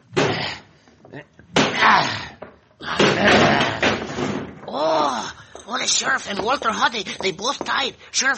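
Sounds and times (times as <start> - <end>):
speech: 1.1 - 2.2, 5.8 - 8.3
locked door being battered and broken down, crashing and splintering: 3.0 - 4.8.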